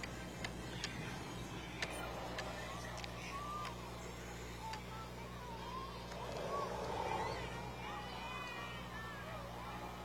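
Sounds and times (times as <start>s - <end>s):
light clicking sounds: 0.0s - 5.1s
car engines rumbling as cars roll slowly past outdoors at a cruise night: 0.0s - 10.0s
faint crowd murmur: 0.0s - 10.0s.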